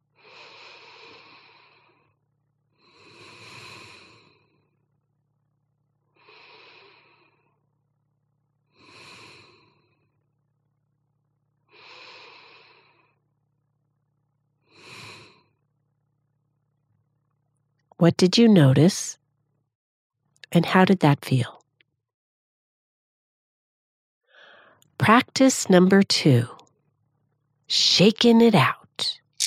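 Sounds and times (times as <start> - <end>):
slow deliberate breathing in and out: 0.2 - 2.2, 2.8 - 4.8, 6.2 - 7.6, 11.7 - 13.2, 24.3 - 24.8
speech: 18.0 - 19.2, 20.5 - 21.6, 25.0 - 26.6, 27.7 - 29.2.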